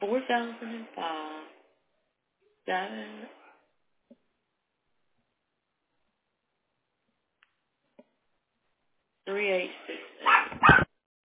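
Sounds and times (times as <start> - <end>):
speech: 0.3 - 1.5, 2.7 - 3.4, 9.3 - 10.9
small fluffy Havanese dog yelping: 10.2 - 10.9.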